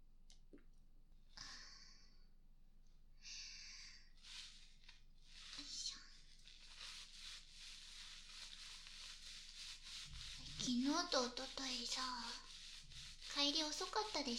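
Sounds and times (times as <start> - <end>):
body being scrubbed with lathered soap at bath time: 4.1 - 14.3
soap worked into foam for washing the body in a bath: 4.2 - 14.3
speech: 10.8 - 12.4, 13.4 - 14.3.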